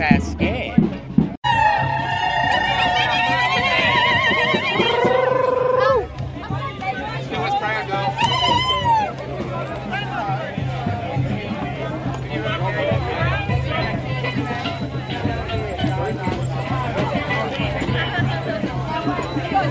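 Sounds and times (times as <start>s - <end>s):
crowd chatter and murmuring voices: 0.0s - 19.6s
police horse whinnying long and wavering: 1.5s - 6.1s.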